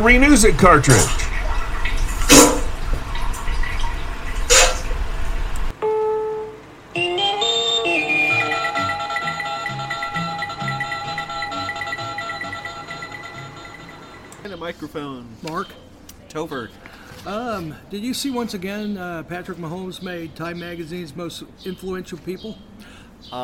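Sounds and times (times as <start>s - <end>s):
speech: 0.0s - 1.2s, 17.8s - 23.4s
running water sound effect: 0.0s - 5.7s
musical passage of sustained tones: 5.8s - 14.4s.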